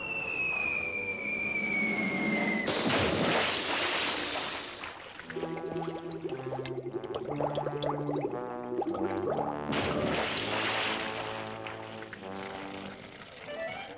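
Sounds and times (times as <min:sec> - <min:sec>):
cartoon high whistling tone: 0:00.0 - 0:02.9, 0:13.5 - 0:13.9
bubbly gurgling underwater sounds: 0:00.0 - 0:13.9
cartoon splash as a character jumps into water: 0:00.0 - 0:13.9
lively orchestral music: 0:08.6 - 0:13.9.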